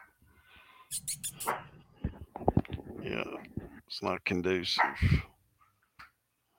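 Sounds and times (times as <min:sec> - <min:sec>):
speech: 0:00.9 - 0:01.3, 0:03.9 - 0:05.3
small dog yapping: 0:00.9 - 0:01.7.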